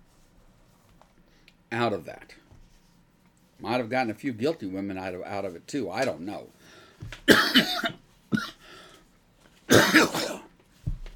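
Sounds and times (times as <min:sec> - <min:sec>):
speech: 0:01.7 - 0:02.4, 0:03.6 - 0:08.5
harsh coughing fit: 0:07.3 - 0:08.6, 0:09.7 - 0:10.5.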